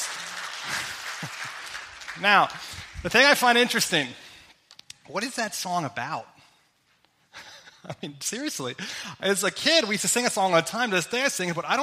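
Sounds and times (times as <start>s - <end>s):
audience applause: 0.0s - 3.1s
laughter: 0.6s - 1.8s
speech: 2.2s - 4.2s, 5.1s - 6.3s, 7.8s - 11.8s.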